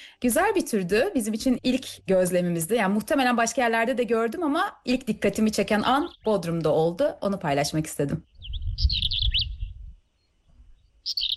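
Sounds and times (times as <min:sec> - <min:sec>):
speech: 0:00.2 - 0:09.1
black-eared wheatear singing: 0:05.1 - 0:06.9, 0:08.2 - 0:11.3.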